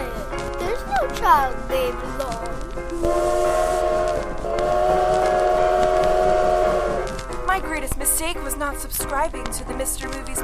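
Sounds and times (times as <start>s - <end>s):
steady rumble of a moving train: 0.0s - 10.4s
rail noise: 0.1s - 9.8s
speech: 1.1s - 4.8s, 7.6s - 10.4s
loud sustained train whistle: 2.9s - 7.2s.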